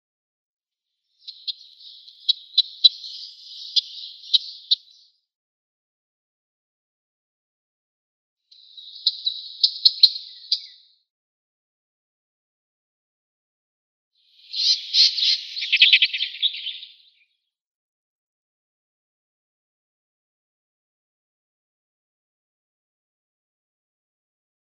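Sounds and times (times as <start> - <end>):
Western Olivaceous Warbler calls: 1.1 - 5.1, 8.5 - 10.9, 14.2 - 17.3.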